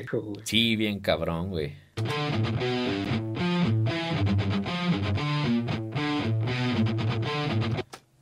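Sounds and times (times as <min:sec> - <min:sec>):
speech: 0:00.0 - 0:03.2
buzzy mosquito-like metal-distorted guitar riff: 0:02.0 - 0:08.0.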